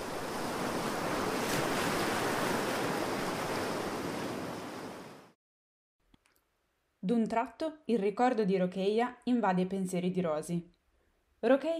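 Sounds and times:
open-sea waves churning around a rubber dinghy in darkness: 0.0s - 5.4s
speech: 7.1s - 10.8s, 11.4s - 11.7s.

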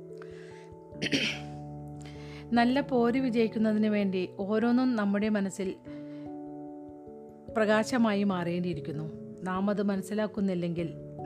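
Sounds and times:
cough: 1.0s - 1.6s
speech: 1.0s - 1.6s, 2.5s - 5.9s, 7.6s - 11.0s.

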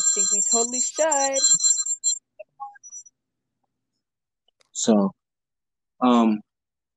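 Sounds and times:
bright electronic bell chime signaling time is up: 0.0s - 2.2s
soft tonal blips: 0.0s - 3.1s
speech: 0.2s - 1.8s, 4.8s - 5.2s, 6.0s - 6.5s.

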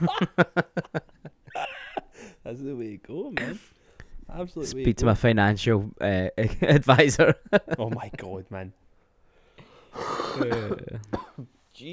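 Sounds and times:
speech: 0.0s - 1.0s, 4.4s - 8.8s, 10.0s - 11.2s
laughter: 0.0s - 2.4s, 6.4s - 8.5s, 10.3s - 11.5s
rough coughs: 3.3s - 3.8s, 9.9s - 11.5s
throat clearing: 10.0s - 11.5s.

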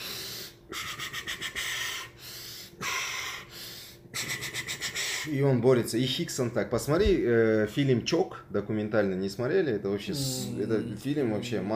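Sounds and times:
person imitating heavy rhythmic breathing of a grappler during wrestling: 0.0s - 5.3s
speech: 5.3s - 11.7s.

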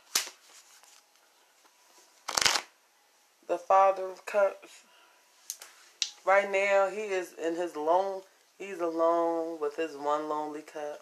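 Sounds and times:
tarot cards riffling: 0.0s - 1.1s, 2.2s - 2.7s
faint papery rustling: 0.0s - 1.2s
speech: 3.5s - 4.9s, 6.2s - 11.0s.

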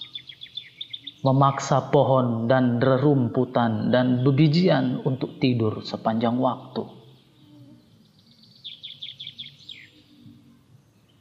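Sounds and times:
birds chirping shrilly, calling to each other: 0.0s - 2.0s, 4.0s - 10.2s
speech: 1.2s - 7.0s.

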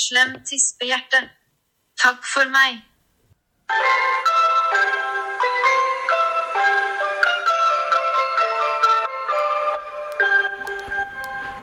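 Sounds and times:
speech: 0.0s - 1.4s, 2.0s - 2.9s, 3.7s - 5.0s
bright tinkling ice cream van jingle of chime-like notes: 3.7s - 11.6s.

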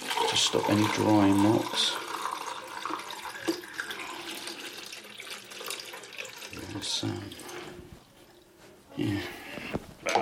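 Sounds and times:
tap water running into a sink while washing developed photographic film: 0.0s - 7.7s
speech: 0.3s - 2.0s, 7.0s - 7.4s, 9.0s - 9.3s.

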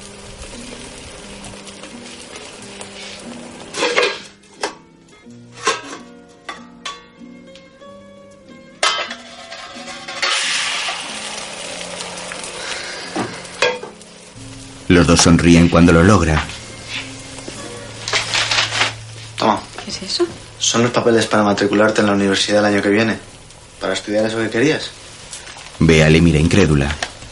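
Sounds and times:
Spanish omelette sizzling in a frying pan: 0.0s - 27.3s
metallic clanks of a lid on a frying pan flipping a Spanish omelette: 5.5s - 7.2s, 8.8s - 10.4s, 13.6s - 14.0s
speech: 15.0s - 16.6s, 20.8s - 23.3s, 23.9s - 25.0s, 25.8s - 27.0s.

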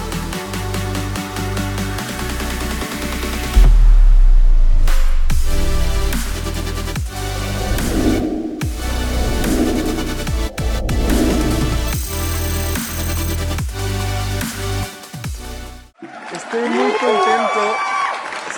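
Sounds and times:
upbeat music: 0.0s - 15.9s
whoops and shouts: 16.0s - 18.4s
crowd cheering and applause: 16.0s - 18.5s.

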